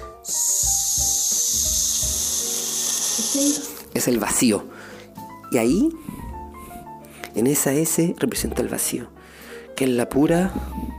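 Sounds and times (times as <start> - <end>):
voice making a shh hiss imitating white noise for babies: 0.0 - 3.9
speech: 3.4 - 4.9, 5.5 - 6.2, 7.4 - 9.2, 9.8 - 10.9.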